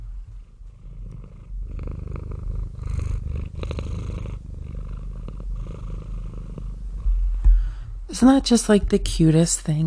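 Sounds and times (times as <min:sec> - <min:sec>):
cat purring loudly: 0:00.0 - 0:07.7
speech: 0:08.2 - 0:09.8.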